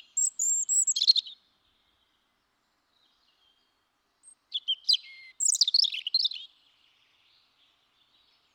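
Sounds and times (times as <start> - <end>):
European robin song: 0.0 - 1.4, 3.0 - 8.5.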